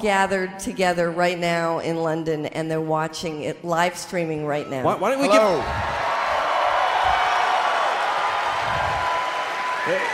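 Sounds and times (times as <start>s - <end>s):
speech: 0.0s - 6.0s, 9.8s - 10.1s
crowd applauding and cheering: 5.6s - 10.1s
rising whoop: 5.6s - 10.1s.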